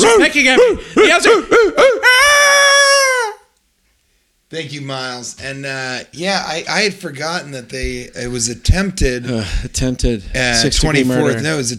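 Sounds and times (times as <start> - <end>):
speech: 0.0 - 2.3, 4.5 - 11.7
person imitating owl hoots: 0.0 - 3.5.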